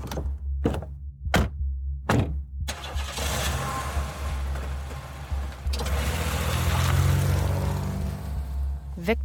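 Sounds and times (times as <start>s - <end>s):
heavy thuds of rental car hit by another car at a stop sign: 0.0s - 2.5s
loud sustained engine rumble and grinding noise: 0.0s - 9.2s
speech: 9.1s - 9.2s.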